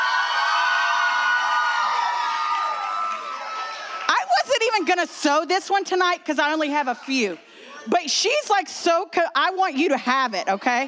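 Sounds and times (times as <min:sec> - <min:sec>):
audience cheering at a service: 0:00.0 - 0:04.9
speech: 0:04.8 - 0:10.8.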